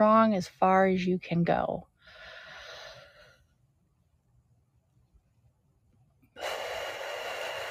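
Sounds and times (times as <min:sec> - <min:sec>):
speech: 0:00.0 - 0:01.9
deep breath: 0:02.0 - 0:03.6, 0:06.3 - 0:07.7.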